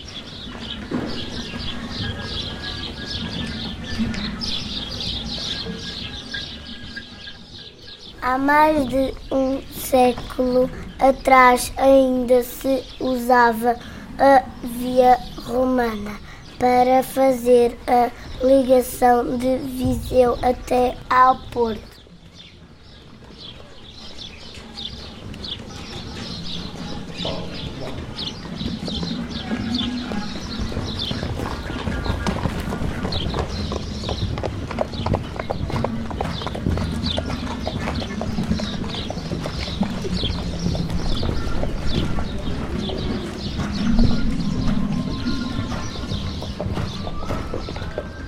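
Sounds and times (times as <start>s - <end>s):
faint birdsong: 0.0s - 48.2s
speech: 8.3s - 21.9s
horse hooves clip-clopping on a hard road: 27.8s - 44.8s, 45.5s - 48.2s.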